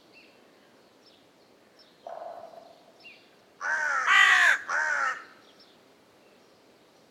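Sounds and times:
carrion crow Corvus corone cawing hoarsely: 0:03.6 - 0:05.4.

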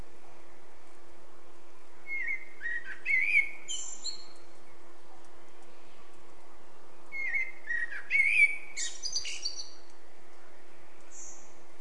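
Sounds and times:
faint continuous hum: 0:00.0 - 0:11.7
Eurasian blackbird Turdus merula song: 0:02.0 - 0:06.2, 0:07.0 - 0:11.6.

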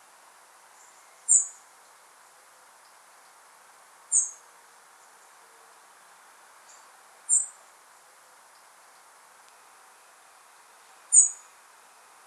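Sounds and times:
steady low background hiss: 0:00.0 - 0:12.2
European robin Erithacus rubecula giving thin high-pitched calls: 0:00.8 - 0:01.6, 0:04.1 - 0:04.5, 0:06.7 - 0:07.6, 0:11.1 - 0:11.5.

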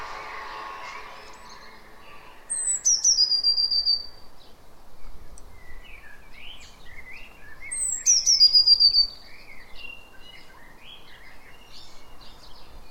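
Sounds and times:
Eurasian blue tit rapid run of piercing high notes sliding downward: 0:00.0 - 0:02.9
Eurasian blue tit Cyanistes caeruleus chirping and twittering: 0:02.4 - 0:04.2, 0:05.3 - 0:12.5.

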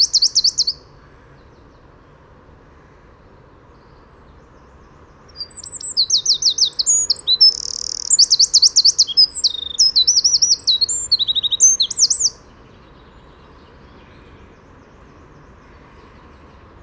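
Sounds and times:
Eurasian wren Troglodytes troglodytes singing trills and buzzy rattles: 0:00.0 - 0:00.9, 0:03.8 - 0:15.5.

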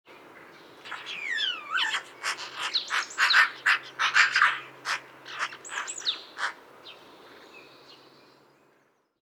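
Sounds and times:
Eurasian magpie giving harsh rattling chatter: 0:00.9 - 0:06.6.

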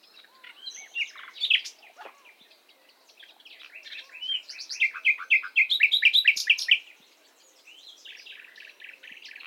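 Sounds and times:
Luscinia megarhynchos singing varied phrases: 0:00.0 - 0:09.4.

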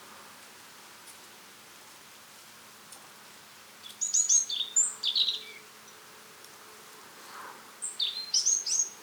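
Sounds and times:
European robin Erithacus rubecula singing high whistled phrases: 0:03.8 - 0:05.7, 0:07.8 - 0:09.0.

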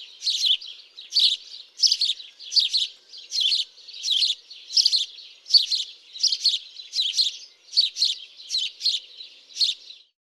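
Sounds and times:
house sparrow Passer domesticus chirping: 0:00.0 - 0:10.1.

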